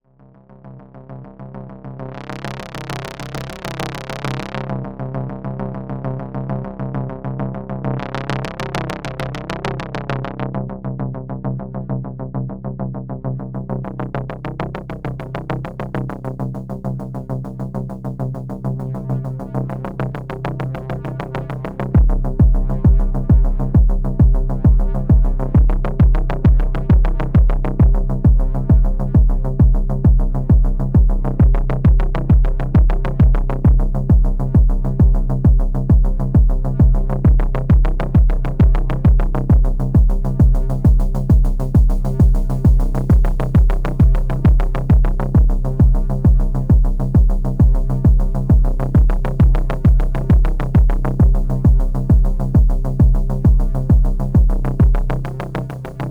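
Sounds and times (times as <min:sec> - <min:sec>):
techno synth modulated by LFO: 0:13.7 - 0:56.0.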